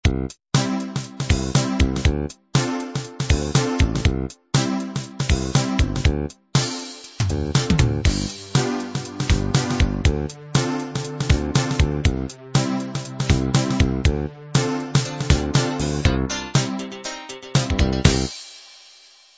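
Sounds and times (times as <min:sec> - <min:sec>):
hip hop music: 0:00.6 - 0:18.4.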